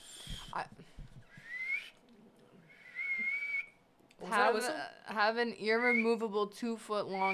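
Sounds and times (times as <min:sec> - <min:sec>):
speech: 0:00.5 - 0:00.9, 0:04.2 - 0:07.3
person whistling short breathy notes: 0:01.3 - 0:02.0, 0:02.7 - 0:03.8.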